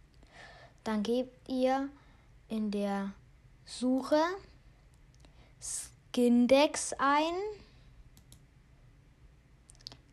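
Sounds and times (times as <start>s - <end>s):
low steady room hum: 0.0s - 10.1s
speech: 0.8s - 4.5s, 5.6s - 7.6s
computer mouse clicking: 8.1s - 8.5s.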